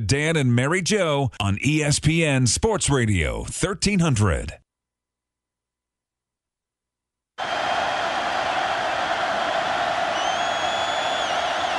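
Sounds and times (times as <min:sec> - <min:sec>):
speech: 0:00.1 - 0:04.6
huge stadium crowd cheering: 0:07.4 - 0:11.7
faint high whistles: 0:09.4 - 0:11.7.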